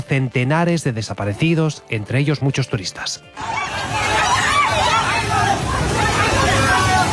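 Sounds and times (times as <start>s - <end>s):
speech: 0.1s - 4.0s
crowd of people screaming and shouting in panic: 3.4s - 7.1s.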